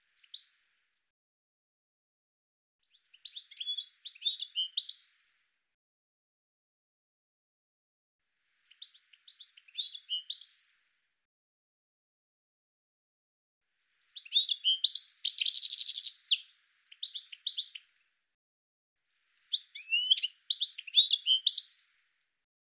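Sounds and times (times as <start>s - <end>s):
bird giving rapid high-pitched chirps and twitters: 3.2s - 5.2s, 8.6s - 10.7s, 14.1s - 17.9s, 19.4s - 21.9s.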